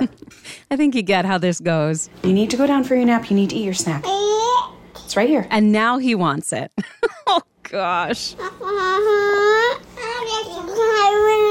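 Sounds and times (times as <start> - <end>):
speech: 0.0 - 4.4, 5.0 - 9.5
toddler boy fussing and wailing with babble: 8.4 - 11.4.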